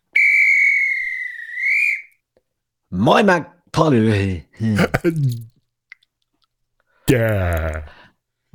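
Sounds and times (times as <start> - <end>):
long shrill whistle blast to start recording: 0.1 - 2.2
speech: 2.9 - 5.5, 7.1 - 8.0.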